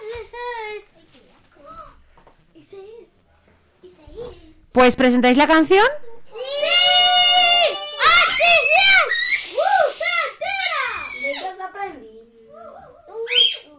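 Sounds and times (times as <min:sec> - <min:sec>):
speech: 0:04.8 - 0:06.0
children screaming and shouting: 0:06.3 - 0:11.6, 0:13.1 - 0:13.7.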